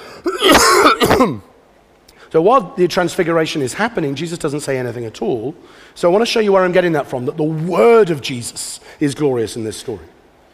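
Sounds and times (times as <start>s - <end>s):
harsh throaty cough tapering into throat clearing: 0.0s - 1.5s
speech: 1.2s - 1.5s, 2.3s - 10.2s.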